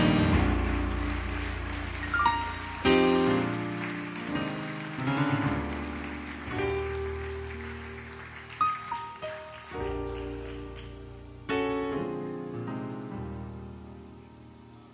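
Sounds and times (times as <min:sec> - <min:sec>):
church audience clapping in praise: 0:00.0 - 0:11.5
sustained keyboard or organ chords: 0:00.0 - 0:14.9.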